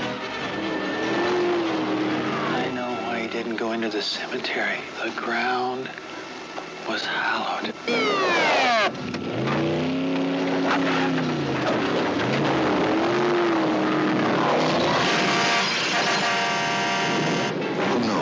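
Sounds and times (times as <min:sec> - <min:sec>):
car engine revving: 0:00.0 - 0:03.3, 0:07.9 - 0:18.1
speech: 0:03.7 - 0:06.1, 0:06.9 - 0:08.5.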